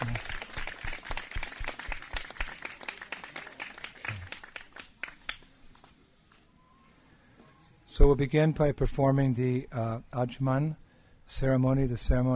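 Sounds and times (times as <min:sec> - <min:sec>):
small audience applauding: 0:00.0 - 0:05.5
speech: 0:08.0 - 0:12.3.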